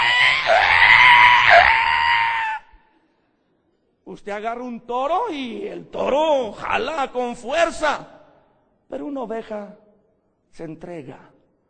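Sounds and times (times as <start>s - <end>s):
human voice imitating a pig squealing: 0.0s - 2.8s
speech: 4.1s - 8.2s, 8.9s - 9.8s, 10.5s - 11.3s.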